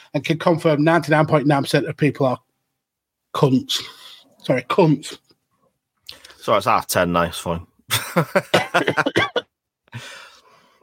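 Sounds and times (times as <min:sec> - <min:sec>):
speech: 0:00.1 - 0:02.5, 0:03.4 - 0:05.2, 0:06.4 - 0:10.2
person laughing in rapid bursts: 0:07.9 - 0:09.4
person coughing harshly: 0:08.4 - 0:09.5.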